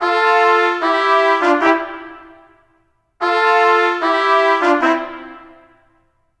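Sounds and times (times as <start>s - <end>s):
clarion trumpet playing reggae: 0.0s - 2.5s, 3.2s - 5.7s.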